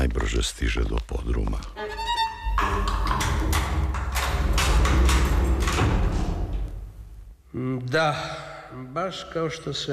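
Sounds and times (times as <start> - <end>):
speech: 0.1 - 3.8, 7.6 - 9.9
bank side door opening with a high squeak: 1.8 - 6.7
rattling taps and knocks: 2.5 - 6.9.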